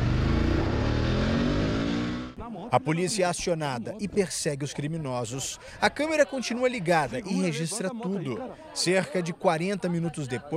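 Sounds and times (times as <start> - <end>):
stolen motorcycle engine accelerating hard at high speed in São Paulo: 0.0 - 2.4
speech: 2.6 - 10.5.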